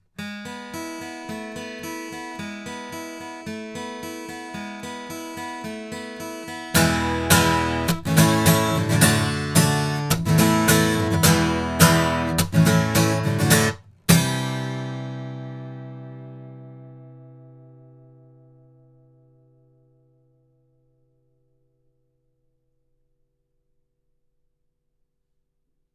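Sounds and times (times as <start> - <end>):
guitar recorded with a cardioid microphone: 0.2 - 20.2.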